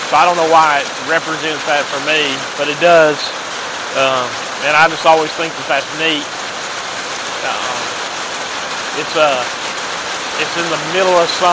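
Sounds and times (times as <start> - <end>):
steady summer rain on a very hot midsummer day: 0.0 - 11.5
speech: 0.1 - 6.4, 9.0 - 9.6, 10.4 - 11.5.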